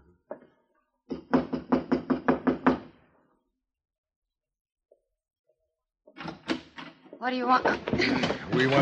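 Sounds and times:
firm knocks on a wooden room door: 1.1 - 2.9
speech: 7.2 - 8.8.

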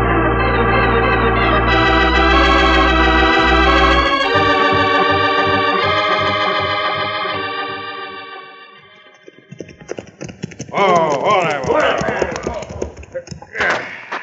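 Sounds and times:
harmonic tone: 0.0 - 9.3
horses' hooves clip-clopping: 9.0 - 13.5.

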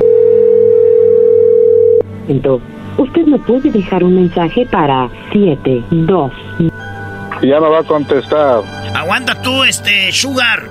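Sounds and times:
telephone tone while redialing: 0.0 - 2.0
speech: 2.3 - 6.8, 7.4 - 10.6.

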